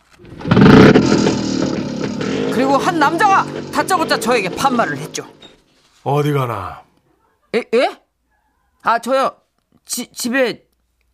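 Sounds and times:
motorcycle engine revving and idling: 0.1s - 5.6s
speech: 2.6s - 5.4s, 6.0s - 6.8s, 7.5s - 8.0s, 8.8s - 10.7s.

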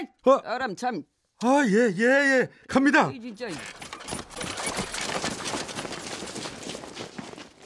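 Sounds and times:
speech: 0.0s - 3.9s
quick running footsteps: 4.0s - 7.6s.

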